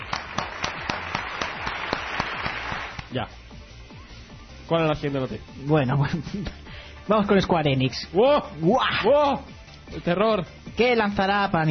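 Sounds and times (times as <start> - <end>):
sharp evenly spaced claps: 0.0 - 3.2
speech: 3.1 - 3.4, 4.7 - 11.6.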